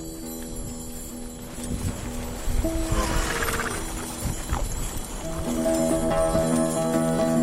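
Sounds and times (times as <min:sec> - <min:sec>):
horse hooves clip-clopping pulling an antique sleigh around a farm: 0:00.0 - 0:07.4
jingling ringing tones: 0:00.0 - 0:07.4.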